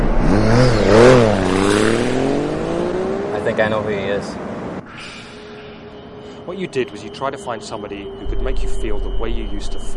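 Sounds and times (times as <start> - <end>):
motorcycle engine idling and revving: 0.1 - 3.7
speech: 3.6 - 4.5, 6.5 - 9.9.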